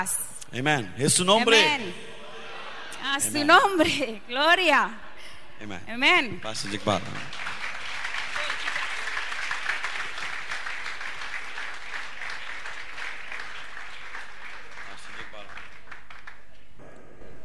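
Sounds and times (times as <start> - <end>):
speech: 0.0 - 2.1, 3.0 - 5.0, 5.6 - 7.4
laughter: 1.4 - 4.2
large church audience applauding during a service: 6.4 - 16.8.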